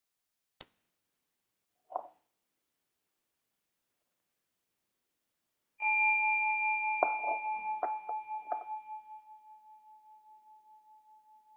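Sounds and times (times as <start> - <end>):
meditation bell ringing: 5.8 - 11.5.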